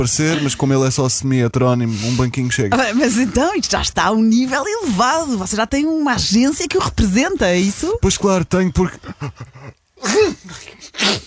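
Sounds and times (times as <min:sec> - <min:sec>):
speech: 0:00.0 - 0:11.2
laughter: 0:08.9 - 0:09.8
loud sneeze: 0:10.0 - 0:11.2.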